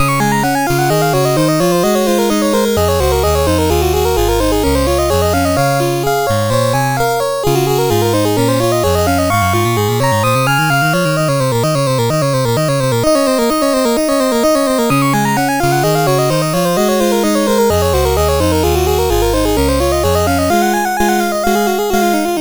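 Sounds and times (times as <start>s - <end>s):
keyboard piece in C sharp major: 0.0s - 22.3s.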